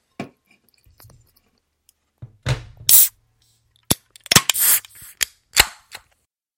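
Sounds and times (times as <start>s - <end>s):
lager can with lime zest cracked open with fizzing hiss: 4.3s - 5.2s.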